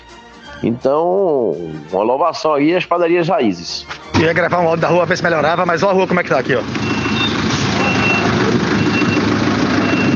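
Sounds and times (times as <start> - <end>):
speech: 0.6 - 7.0
four-stroke diesel engine of about 3 to 3.5 litres with knocking connecting rod: 4.2 - 10.1.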